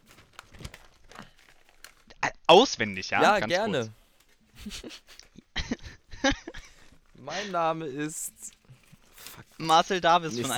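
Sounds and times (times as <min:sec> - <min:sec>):
paper pages flipped and rustled: 0:00.0 - 0:02.2, 0:03.9 - 0:05.4, 0:08.0 - 0:10.5
speech: 0:02.5 - 0:04.0, 0:04.6 - 0:05.2, 0:06.2 - 0:06.6, 0:07.2 - 0:08.6, 0:09.6 - 0:10.5
laughter: 0:04.6 - 0:07.5.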